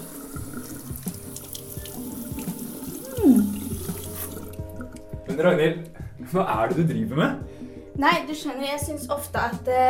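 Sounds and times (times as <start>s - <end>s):
bathroom tap running into a sink: 0.0s - 5.1s
speech: 5.4s - 9.8s.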